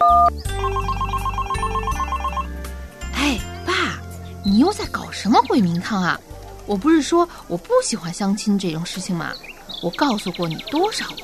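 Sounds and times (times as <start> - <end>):
telephone ringing during outgoing call: 0.0 - 2.5
speech: 4.4 - 11.2.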